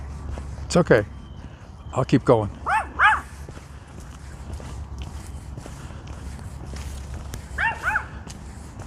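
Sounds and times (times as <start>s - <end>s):
faint scuffing steps: 0.0s - 1.7s, 2.5s - 8.8s
speech: 0.7s - 1.1s, 1.9s - 2.6s
dog barking behind a fence: 2.6s - 3.3s, 7.6s - 8.2s.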